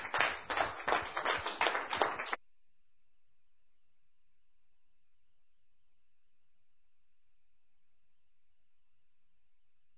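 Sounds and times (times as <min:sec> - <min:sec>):
group clapping in a round of applause: 0:00.0 - 0:02.4.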